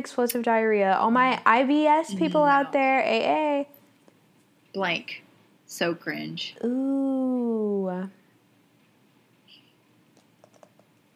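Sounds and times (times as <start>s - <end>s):
speech: 0.0s - 3.8s, 4.7s - 8.2s
typing on a computer keyboard: 10.2s - 10.9s.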